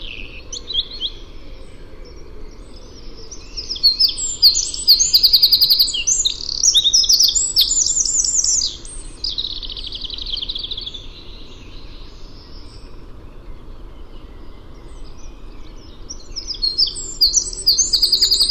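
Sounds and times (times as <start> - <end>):
Eurasian wren Troglodytes troglodytes singing high-pitched trills: 0.0 - 18.4.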